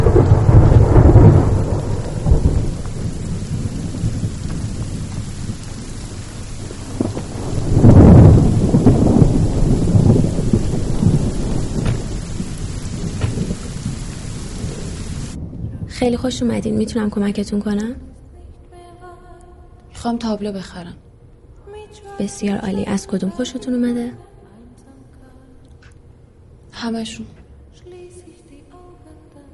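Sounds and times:
heavy rain: 0.0 - 17.9
deep rolls of thunder: 0.0 - 18.0
speech: 16.0 - 18.1, 20.0 - 21.1, 22.2 - 24.3, 26.8 - 27.4.

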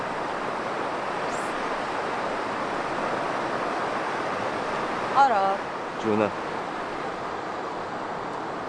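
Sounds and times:
ocean surf washing against the shore: 0.0 - 8.6
speech: 5.2 - 6.5.

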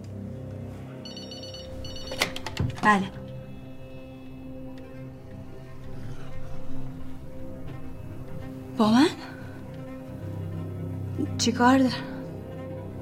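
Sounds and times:
hotel room telephone ringing in short electronic bursts: 1.0 - 3.6
speech: 2.8 - 3.2, 8.8 - 9.1, 11.4 - 12.1.

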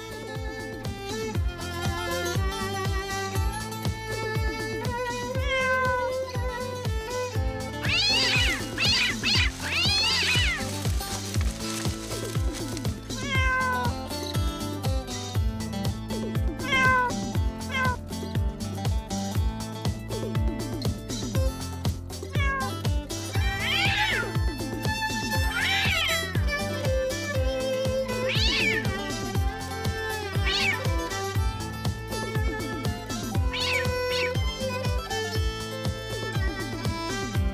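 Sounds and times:
steady rhythmic music: 0.0 - 37.5
several cats meowing: 5.2 - 6.3, 7.8 - 14.0, 16.6 - 18.0, 22.3 - 22.8, 23.4 - 24.4, 25.4 - 26.3, 28.2 - 29.3, 30.3 - 31.1, 33.3 - 34.5.

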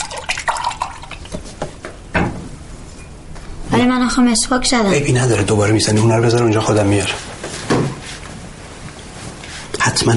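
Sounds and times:
drink pouring into a glass: 0.0 - 1.4
speech: 3.8 - 7.3, 10.0 - 10.1.

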